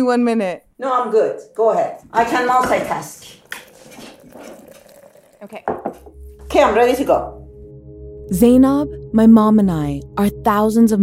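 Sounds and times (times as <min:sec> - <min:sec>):
speech: 0:00.0 - 0:04.6, 0:05.4 - 0:07.4, 0:08.3 - 0:11.0
coffee pouring into a cup: 0:02.2 - 0:06.4
cup or dishware clinking: 0:02.4 - 0:06.1.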